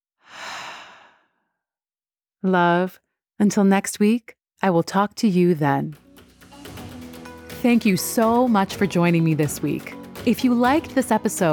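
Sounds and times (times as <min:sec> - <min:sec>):
deep breath out during a guided breathing exercise: 0:00.2 - 0:01.6
speech: 0:02.4 - 0:06.0, 0:07.6 - 0:11.5.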